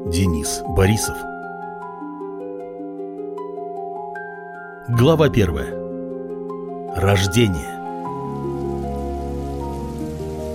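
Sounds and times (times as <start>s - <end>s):
speech: 0.1s - 1.3s, 4.9s - 5.8s, 6.9s - 7.8s
rain falling on a surface: 7.0s - 10.5s.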